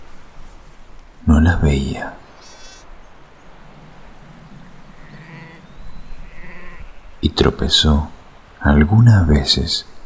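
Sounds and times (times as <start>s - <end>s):
speech: 1.3s - 2.2s, 7.4s - 9.9s
insects buzzing: 2.2s - 7.3s
sheep bleating: 2.4s - 2.9s, 4.9s - 6.9s.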